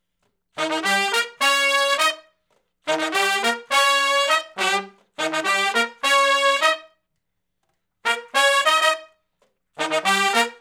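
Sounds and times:
R B horn section riff in unison in E flat: 0.6 - 2.3, 2.9 - 7.0, 8.0 - 9.2, 9.8 - 10.5.

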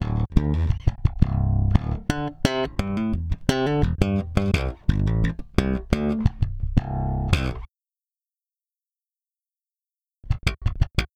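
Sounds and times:
electric bass: 0.0 - 7.7.

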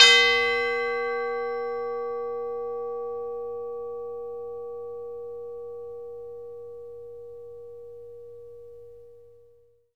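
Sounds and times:
chime A4: 0.0 - 6.2.

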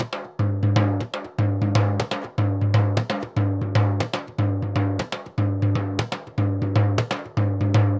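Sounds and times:
surdo bomba drum and percussion beat: 0.0 - 7.9.

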